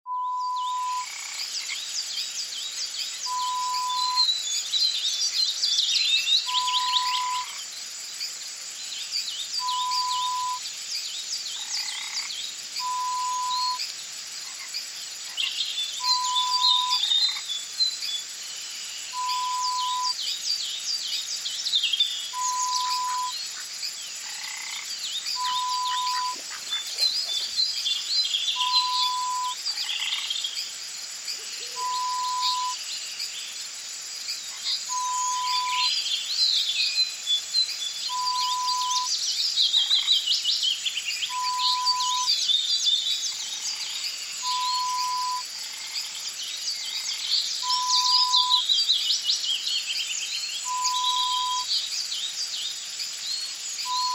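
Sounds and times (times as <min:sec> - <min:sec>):
pond ambience: 0:00.1 - 0:54.1.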